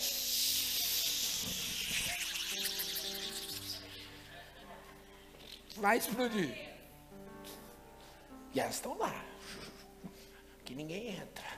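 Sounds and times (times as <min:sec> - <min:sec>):
person vocally imitating a pressure cooker hissing: 0:00.0 - 0:04.1
speech: 0:05.8 - 0:06.7, 0:08.5 - 0:09.6, 0:10.7 - 0:11.5.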